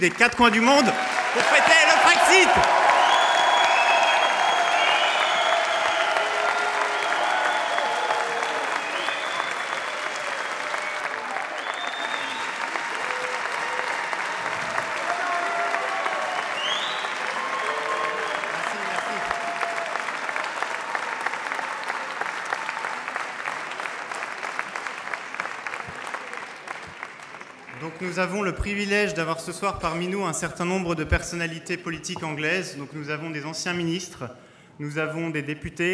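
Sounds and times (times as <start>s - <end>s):
speech: 0.0s - 2.8s, 28.2s - 35.9s
audience applause for guests at an evening gathering: 0.0s - 28.4s.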